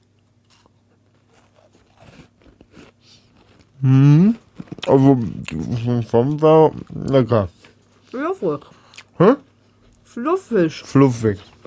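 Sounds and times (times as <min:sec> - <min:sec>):
crunching bites of vanilla crescent cookies: 0:00.0 - 0:07.3
speech: 0:03.8 - 0:09.4, 0:10.2 - 0:11.6.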